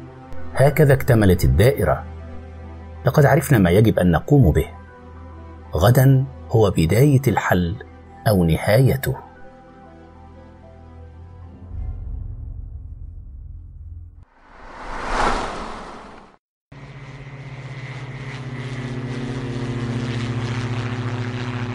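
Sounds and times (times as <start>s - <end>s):
speech: 0.6s - 2.1s, 3.0s - 4.8s, 5.7s - 9.2s
brief rushing swell: 14.4s - 16.4s
steady airplane engine drone in a cabin in flight: 14.4s - 21.7s.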